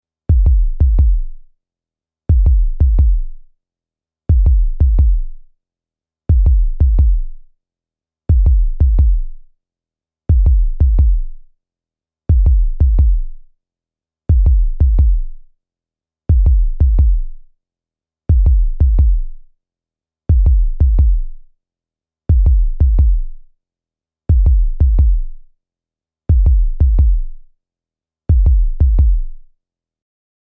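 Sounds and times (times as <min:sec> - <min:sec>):
pounding steady human heartbeat loop: 0:00.3 - 0:01.3, 0:02.3 - 0:03.3, 0:04.3 - 0:05.3, 0:06.3 - 0:07.3, 0:08.3 - 0:09.3, 0:10.3 - 0:11.3, 0:12.3 - 0:13.3, 0:14.3 - 0:15.3, 0:16.3 - 0:17.3, 0:18.3 - 0:19.3, 0:20.3 - 0:21.3, 0:22.3 - 0:23.3, 0:24.3 - 0:25.3, 0:26.3 - 0:27.3, 0:28.3 - 0:29.4.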